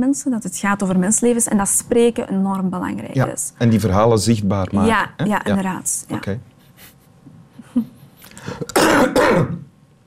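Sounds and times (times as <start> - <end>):
speech: 0.0 - 7.0
person coughing harshly: 8.4 - 9.7.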